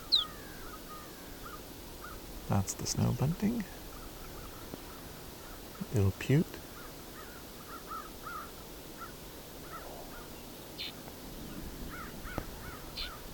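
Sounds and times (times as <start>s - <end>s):
higher chirps: 0.0s - 0.4s
flock of crows cawing: 0.0s - 2.2s, 3.9s - 5.8s, 6.6s - 11.0s, 11.9s - 13.3s
steady outdoor noise: 0.0s - 13.3s
speech: 2.5s - 3.8s, 5.9s - 6.6s.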